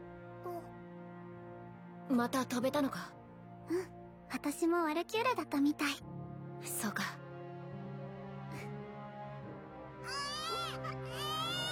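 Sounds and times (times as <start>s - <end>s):
speech: 2.1s - 7.2s, 8.5s - 8.8s
newborn baby crying: 10.1s - 11.7s.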